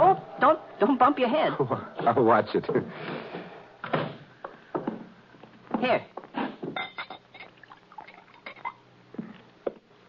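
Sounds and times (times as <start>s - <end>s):
speech: 0.4s - 3.4s, 5.8s - 6.2s
glassware clinking: 6.8s - 8.8s
drink poured into a glass inside a wagon used as a home: 7.3s - 8.8s.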